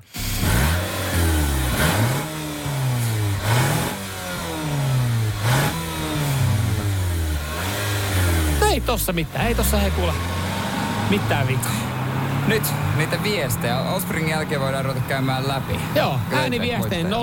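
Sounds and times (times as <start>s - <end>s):
car engine running and revving: 0.0s - 17.2s
speech: 8.9s - 10.4s, 11.1s - 11.9s, 12.5s - 17.2s.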